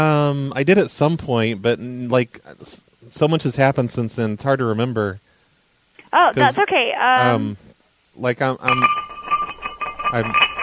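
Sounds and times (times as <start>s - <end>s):
speech: 0.0s - 5.3s, 6.1s - 7.6s, 8.2s - 9.1s, 10.1s - 10.5s
glass object knocked over, clinking and ringing: 8.6s - 10.6s.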